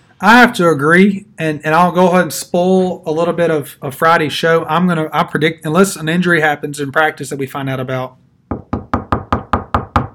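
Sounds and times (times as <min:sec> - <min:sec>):
speech: 0:00.2 - 0:08.2
knocking on wood: 0:08.5 - 0:10.1.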